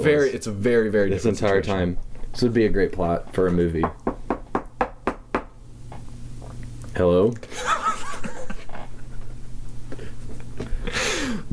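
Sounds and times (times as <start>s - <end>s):
speech: 0.0s - 4.1s, 7.0s - 7.8s
knocking on a door: 3.8s - 5.6s
laughter: 7.5s - 9.6s.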